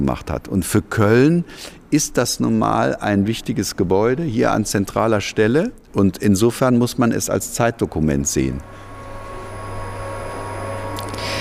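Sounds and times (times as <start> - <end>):
speech: 0.0 - 8.9
vacuum cleaner running: 8.6 - 11.3.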